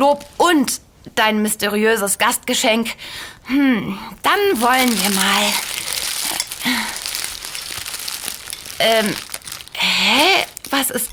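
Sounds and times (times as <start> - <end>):
speech: 0.0 - 5.9, 8.8 - 9.3, 10.1 - 11.1
bag full of black tomatoes being opened and rustled: 4.2 - 11.1.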